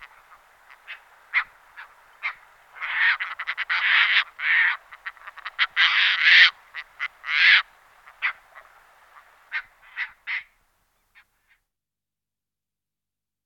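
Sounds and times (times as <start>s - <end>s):
Caspian tern Sterna caspia calling with harsh grating croaks: 0.0s - 10.6s.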